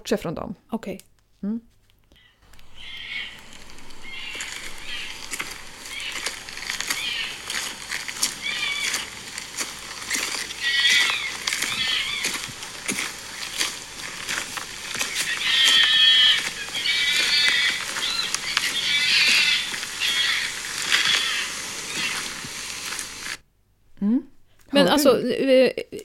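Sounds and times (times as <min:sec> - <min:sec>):
speech: 0:00.0 - 0:01.8, 0:24.8 - 0:26.0
footsteps crunching and rustling: 0:02.4 - 0:23.4
fox screaming at night: 0:02.6 - 0:23.4.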